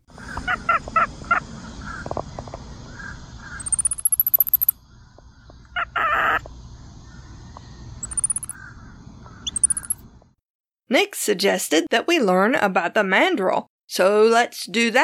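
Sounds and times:
capuchin monkey calls with bird-like trills: 0.2 - 2.0, 3.5 - 4.8, 5.7 - 6.5, 8.0 - 8.6, 9.4 - 10.0
speech: 10.9 - 15.0.

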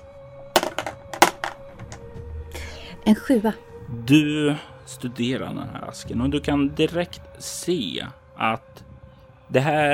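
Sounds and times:
two dice rolled clattering on a hard surface: 0.6 - 2.0
speech: 3.1 - 8.8, 9.5 - 9.9.

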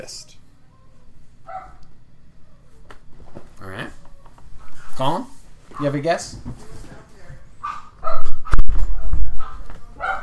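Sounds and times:
speech: 0.0 - 0.4, 3.6 - 4.0, 5.0 - 6.8
dog barking: 1.4 - 1.8, 7.6 - 8.6, 9.4 - 10.2.

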